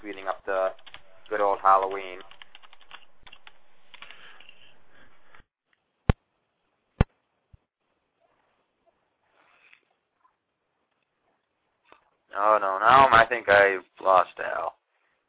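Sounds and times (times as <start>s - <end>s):
man typing on a computer keyboard: 0.7s - 4.5s
isolated sharp key presses: 0.8s - 4.2s
speech: 1.6s - 2.3s, 12.9s - 14.7s.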